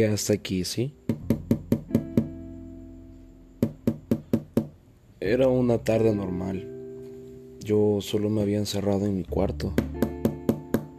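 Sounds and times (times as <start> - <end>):
speech: 0.0 - 1.4, 5.3 - 6.7, 7.6 - 10.0
knocking on a bedroom door: 1.1 - 2.4, 3.6 - 4.8, 9.8 - 10.9.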